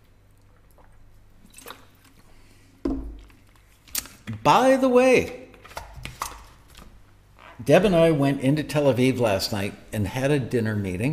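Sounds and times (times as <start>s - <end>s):
person sipping and gulping fruit water from Israel: 0.1s - 4.3s
speech: 4.4s - 5.4s, 7.7s - 11.1s.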